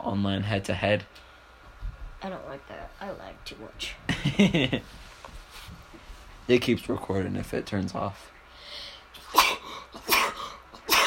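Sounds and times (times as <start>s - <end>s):
speech: 0.0s - 1.3s, 2.2s - 5.8s, 6.5s - 9.5s
person sneezing: 9.2s - 11.0s.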